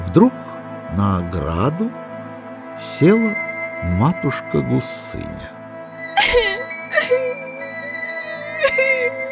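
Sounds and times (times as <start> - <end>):
speech: 0.2 - 2.0, 2.8 - 5.6
girl sobbing bitterly, performed by a voice actor: 6.2 - 9.3.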